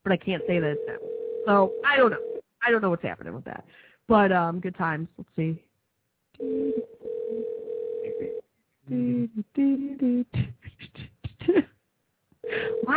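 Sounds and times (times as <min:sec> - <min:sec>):
recorded-sounding voice talking: 0:00.0 - 0:05.0, 0:08.1 - 0:08.3, 0:08.9 - 0:10.2, 0:12.5 - 0:12.9
speech: 0:00.0 - 0:05.7, 0:06.4 - 0:07.4, 0:08.9 - 0:11.7, 0:12.5 - 0:12.9
outgoing phone call ringback tone through the earpiece: 0:00.4 - 0:02.4, 0:06.4 - 0:08.4, 0:12.4 - 0:12.9.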